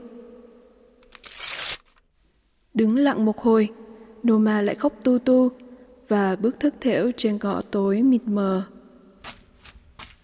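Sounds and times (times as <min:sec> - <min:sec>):
sheet of paper being torn in half: 0:01.1 - 0:02.0
speech: 0:02.8 - 0:08.8.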